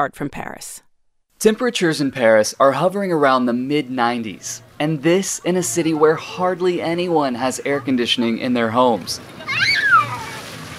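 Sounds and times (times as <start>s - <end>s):
speech: 0.0s - 9.9s
children splashing in a city fountain in northeast Paris during a summer heat wave: 8.9s - 10.7s.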